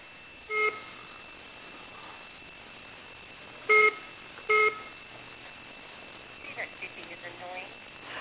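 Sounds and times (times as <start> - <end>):
short electronic beeps over a telephone-quality line: 0.5 - 0.9, 3.7 - 4.9.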